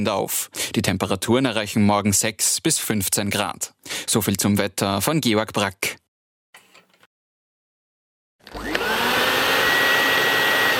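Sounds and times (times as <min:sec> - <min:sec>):
speech: 0:00.0 - 0:06.0
early 20th-century vacuum cleaner motor running: 0:08.4 - 0:10.7.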